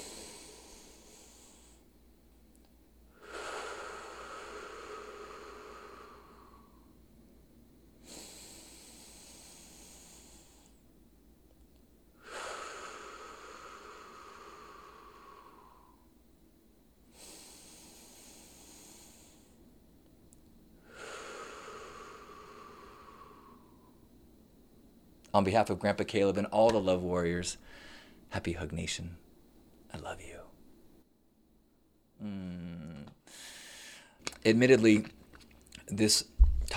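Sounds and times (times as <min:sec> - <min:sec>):
slow deep breathing through the nose in a group meditation: 0:00.0 - 0:01.9, 0:03.2 - 0:07.0, 0:08.0 - 0:10.9, 0:12.2 - 0:16.1, 0:17.1 - 0:19.6, 0:20.8 - 0:24.0, 0:27.6 - 0:28.2, 0:33.2 - 0:34.2
speech: 0:25.3 - 0:29.2, 0:34.4 - 0:35.2, 0:35.9 - 0:36.3.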